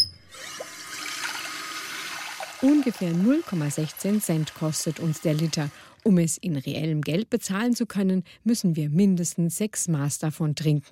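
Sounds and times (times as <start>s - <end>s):
water gushing from a tap: 0.3s - 5.9s
speech: 2.6s - 10.9s.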